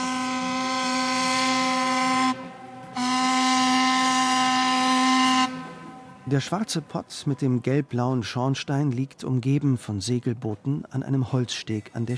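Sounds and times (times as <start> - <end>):
steam whistle of a historic steamer tested by its crew in Flensburg: 0.0 - 6.3
speech: 6.3 - 12.1.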